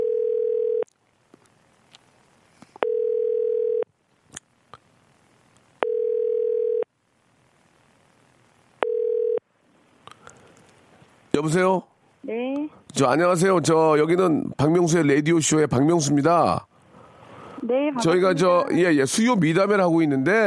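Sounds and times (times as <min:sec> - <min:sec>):
telephone ringback tone while placing a call: 0:00.0 - 0:00.8, 0:02.8 - 0:03.8, 0:05.8 - 0:06.8, 0:08.8 - 0:09.4
speech: 0:11.4 - 0:16.7, 0:17.7 - 0:20.4.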